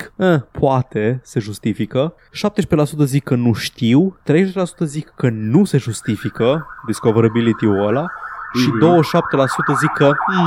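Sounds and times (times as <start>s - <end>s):
speech: 0.2s - 10.4s
odd warbling siren with rapidly wavering pitch: 5.6s - 10.4s.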